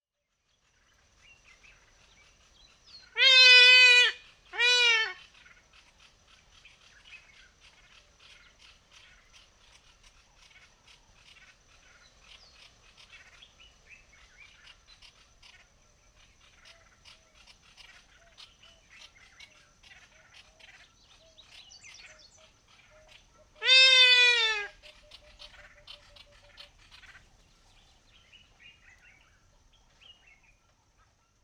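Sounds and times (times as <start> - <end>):
trumpeter hornbill calling: 3.1 - 5.3, 23.0 - 27.3.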